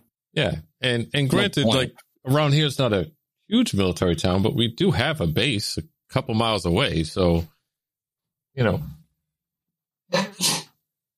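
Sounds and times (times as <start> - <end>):
speech: 0.4 - 7.5, 8.6 - 9.0, 10.1 - 10.6
two-part sneeze: 10.1 - 10.8.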